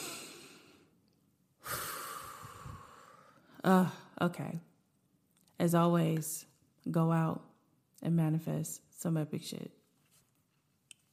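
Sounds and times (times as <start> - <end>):
person breathing out during a shared breathing pause: 0.0 - 0.9, 1.6 - 3.6
speech: 3.6 - 4.7, 5.6 - 9.8.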